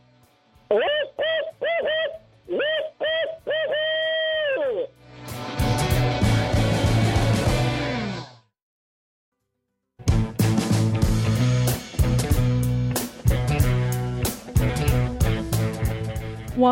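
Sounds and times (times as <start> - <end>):
speech: 0.7 - 1.2
human voice imitating owl hoots to call owls in: 0.7 - 5.0
loud music: 5.0 - 8.3, 10.1 - 16.7.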